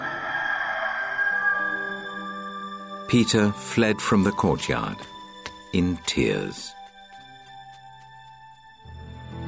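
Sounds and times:
rooster crowing: 0:00.0 - 0:02.4
speech: 0:03.1 - 0:05.1, 0:05.7 - 0:06.8.

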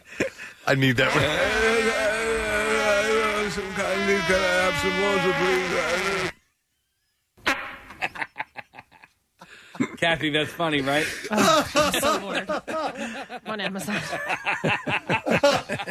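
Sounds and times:
laughter: 0:00.0 - 0:06.3, 0:07.9 - 0:15.9
speech: 0:00.7 - 0:02.0, 0:03.6 - 0:06.3, 0:10.0 - 0:15.9
long loud buzzy fart: 0:01.0 - 0:06.4, 0:07.4 - 0:08.0.

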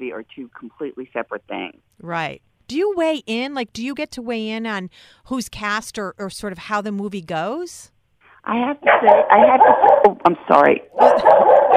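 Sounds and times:
speech: 0:00.0 - 0:11.7
dog giving yappy whining barks: 0:08.8 - 0:10.2, 0:11.0 - 0:11.7.

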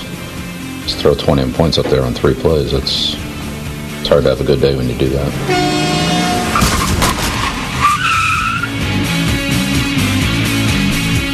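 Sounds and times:
bus engine rumbling: 0:00.0 - 0:11.3
speech: 0:00.9 - 0:03.2, 0:04.1 - 0:05.9
skidding bus tires screeching: 0:05.1 - 0:08.9.

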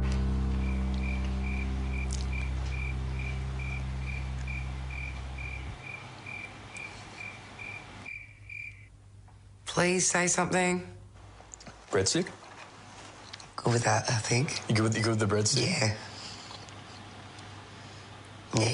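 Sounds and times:
low ambient hum: 0:00.0 - 0:18.7
steady evenly spaced cricket chirping: 0:00.2 - 0:09.0
speech: 0:09.8 - 0:11.0, 0:11.9 - 0:12.4, 0:13.6 - 0:16.1, 0:18.6 - 0:18.7.

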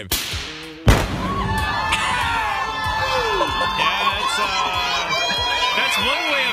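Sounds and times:
speech: 0:00.0 - 0:00.3
long rumbling crackling explosion tail: 0:00.8 - 0:03.2
explosion of a wedding dress rigged with explosives: 0:00.9 - 0:02.4
laughter: 0:01.8 - 0:06.5.

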